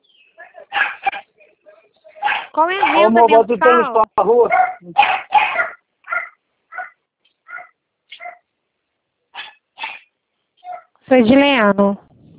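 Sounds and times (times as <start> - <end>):
dog barking: 0.7 - 1.3, 2.2 - 3.2, 4.5 - 8.5, 9.3 - 11.0
speech: 2.6 - 5.2, 11.1 - 12.0.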